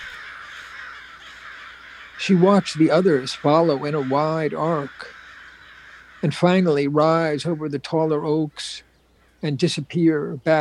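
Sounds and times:
large black crow cawing over a field of Christmas trees: 0:00.0 - 0:07.8, 0:08.8 - 0:09.5
speech: 0:02.2 - 0:05.2, 0:06.2 - 0:10.5.

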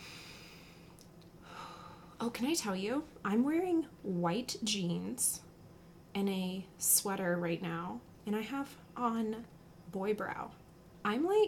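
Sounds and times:
long soft intake of breath: 0:00.0 - 0:02.2
speech: 0:02.2 - 0:05.5, 0:06.1 - 0:11.4.

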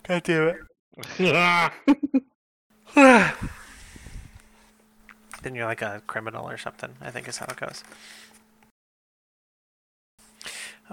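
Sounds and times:
speech: 0:00.1 - 0:02.3, 0:05.4 - 0:08.3
person yawning with a voiced groan: 0:02.9 - 0:03.8.

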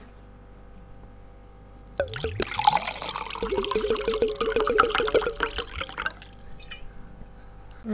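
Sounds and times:
water: 0:01.8 - 0:07.9.

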